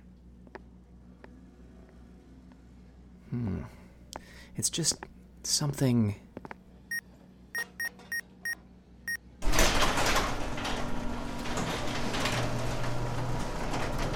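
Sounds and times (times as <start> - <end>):
speech: 4.6 - 6.5
short electronic beeps: 7.6 - 9.2
sliding warehouse door opening: 9.4 - 14.1.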